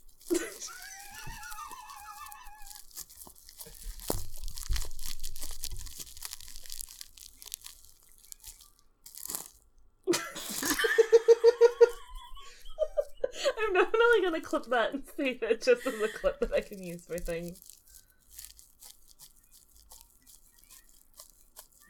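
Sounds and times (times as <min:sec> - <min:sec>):
crusty bread bitten and torn: 0:00.0 - 0:15.1, 0:15.8 - 0:21.8
people giggling and laughing: 0:00.3 - 0:02.7, 0:10.1 - 0:14.5, 0:15.4 - 0:16.6
speech: 0:14.4 - 0:17.7.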